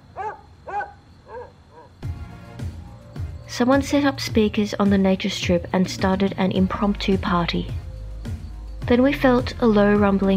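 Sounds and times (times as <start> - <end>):
dogs barking excitedly: 0.1 - 2.0
speech: 3.5 - 7.8, 8.9 - 10.3.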